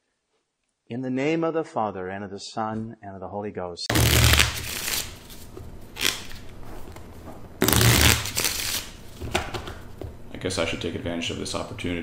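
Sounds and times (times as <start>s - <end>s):
speech: 0.9s - 4.6s, 10.4s - 12.0s
deck of playing cards being shuffled: 3.9s - 9.9s.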